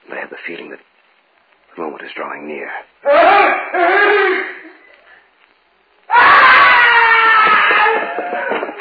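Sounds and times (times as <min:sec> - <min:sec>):
speech: 0:00.5 - 0:00.9, 0:01.8 - 0:04.5
human scream: 0:03.0 - 0:04.6, 0:06.1 - 0:08.6.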